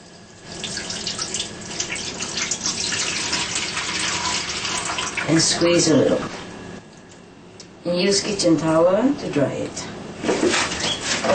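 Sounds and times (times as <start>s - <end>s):
water running from a tap while something is rinsed: 0.0s - 5.6s
speech: 5.3s - 6.4s, 7.9s - 10.6s.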